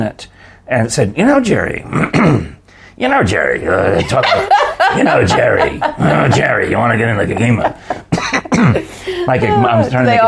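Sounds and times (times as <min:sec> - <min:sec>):
speech: 0:00.0 - 0:10.2
gravelly throat clearing: 0:01.9 - 0:02.6, 0:08.1 - 0:08.8
laughter: 0:03.8 - 0:10.1.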